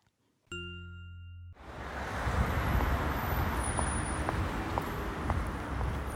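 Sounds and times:
short chime tone: 0.5 - 1.6
city street traffic rumbling: 0.8 - 6.1
hard shoes clacking along the pavement: 2.6 - 6.1.

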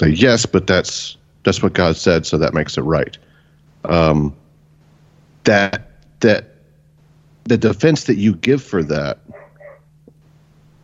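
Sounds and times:
speech: 0.0 - 3.2, 3.8 - 4.4, 5.4 - 6.5, 7.4 - 9.4
steady low electrical hum: 0.0 - 10.8
dog barking: 9.3 - 9.9.

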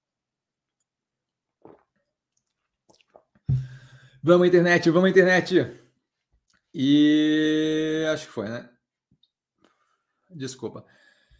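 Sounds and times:
person sipping and swallowing water: 1.6 - 3.9
loud thump with a low hum: 3.5 - 3.8
speech: 4.2 - 5.8, 6.8 - 8.7, 10.3 - 11.0.

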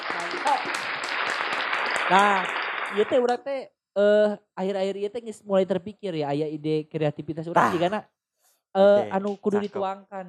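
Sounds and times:
crowd applause: 0.0 - 3.3
speech: 0.3 - 1.0, 2.1 - 10.2.

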